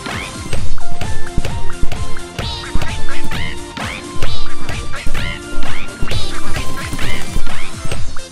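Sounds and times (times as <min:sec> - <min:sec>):
loud busy electronic video game music: 0:00.0 - 0:08.3
chirpy quacking video game bird-flight sound effects: 0:02.4 - 0:08.3.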